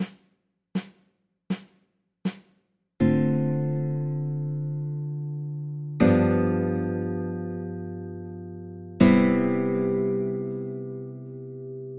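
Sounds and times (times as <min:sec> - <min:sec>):
guitar playing ii V I chord progressions: 0:03.0 - 0:11.9.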